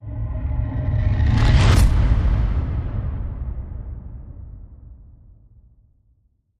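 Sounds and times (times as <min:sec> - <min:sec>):
thermal explosion whoosh: 0:01.0 - 0:04.9.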